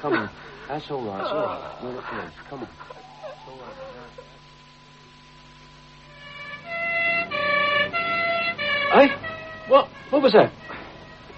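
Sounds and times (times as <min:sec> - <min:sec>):
speech: 0:00.0 - 0:03.8, 0:08.9 - 0:10.6
low hum: 0:00.0 - 0:11.3
ambulance siren wailing: 0:06.1 - 0:11.3.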